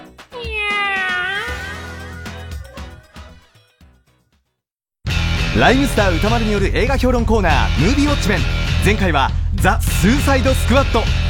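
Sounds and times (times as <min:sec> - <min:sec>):
cat meowing: 0:00.3 - 0:02.6
speech: 0:05.6 - 0:11.2.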